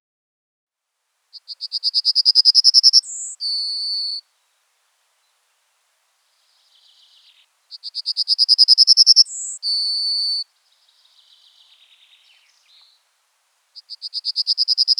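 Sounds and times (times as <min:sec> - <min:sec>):
faint bird twittering softly: 0:01.3 - 0:04.2, 0:06.4 - 0:14.9
yellowhammer Emberiza citrinella song: 0:01.4 - 0:04.3, 0:06.4 - 0:14.9.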